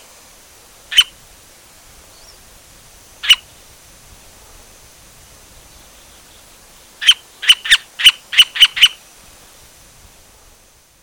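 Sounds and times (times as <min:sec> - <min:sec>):
white-fronted woodpecker calls: 0:00.9 - 0:01.2, 0:03.2 - 0:03.6, 0:05.8 - 0:09.0.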